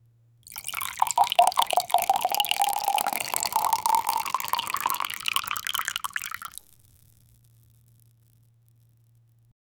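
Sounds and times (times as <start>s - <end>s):
liquid pouring: 0.5s - 6.7s.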